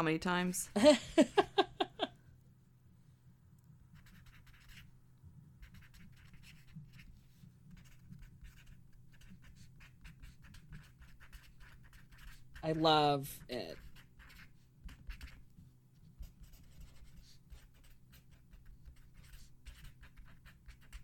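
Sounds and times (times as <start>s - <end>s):
speech: 0.0s - 1.5s, 12.7s - 13.8s
laughter: 0.8s - 2.1s
felt-tip pen scratching across paper: 3.9s - 4.9s, 5.6s - 21.0s.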